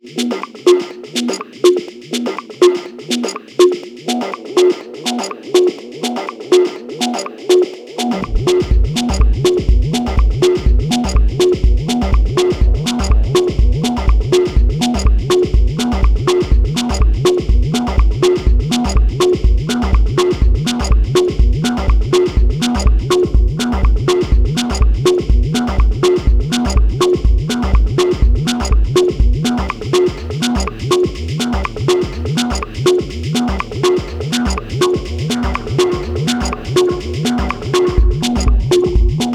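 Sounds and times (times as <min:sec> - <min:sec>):
techno on acid bass synthesizer, FM synthesizer and sampler: 0:00.0 - 0:39.3.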